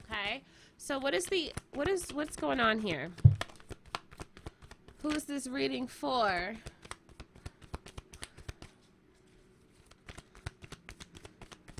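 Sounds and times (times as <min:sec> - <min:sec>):
speech: 0:00.3 - 0:03.3, 0:05.0 - 0:06.7
shuffling a deck of reading cards: 0:01.0 - 0:05.3, 0:06.3 - 0:11.7.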